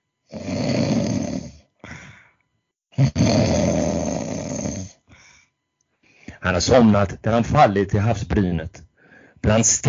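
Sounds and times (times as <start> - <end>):
heavy rumbling snores with rasping inhales: 0.3 - 2.1, 3.0 - 5.1
speech: 6.5 - 9.8.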